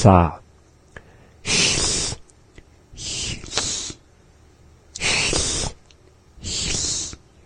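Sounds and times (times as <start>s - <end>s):
speech: 0.0s - 0.4s, 1.4s - 1.7s
voice imitating a cat's hissing in a language lesson: 1.4s - 2.2s, 2.9s - 4.0s, 5.0s - 5.8s, 6.4s - 7.3s.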